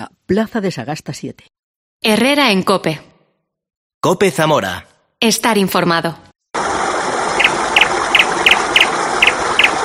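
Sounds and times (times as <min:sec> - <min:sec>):
speech: 0:00.3 - 0:03.1, 0:04.0 - 0:06.3
small bird chirping: 0:07.4 - 0:09.7.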